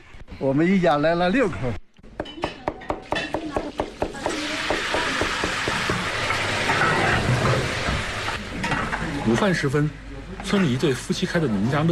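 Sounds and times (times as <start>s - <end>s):
speech: 0.4s - 1.8s, 9.3s - 11.8s
rhythmic kitchen knocks and clatters: 2.2s - 9.6s
food sizzling in a pan: 4.1s - 8.5s.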